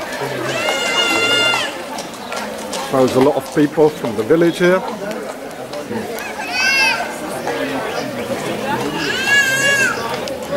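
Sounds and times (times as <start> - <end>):
crowd chatter and people talking outdoors: 0.0 - 10.5
sheep bleating in a flock: 0.3 - 1.8
speech: 2.9 - 5.1.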